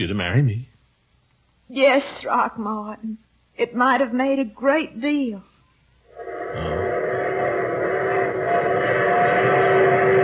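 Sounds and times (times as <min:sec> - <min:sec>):
speech: 0:00.0 - 0:00.7, 0:01.7 - 0:05.5
squealing whistle-like tones: 0:06.1 - 0:10.2
train rumbling into a station: 0:06.1 - 0:10.2.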